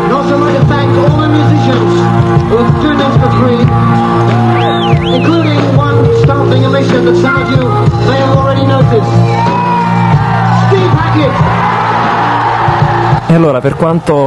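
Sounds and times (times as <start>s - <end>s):
large concert crowd screaming and cheering: 0.0s - 14.2s
speech: 13.4s - 14.2s.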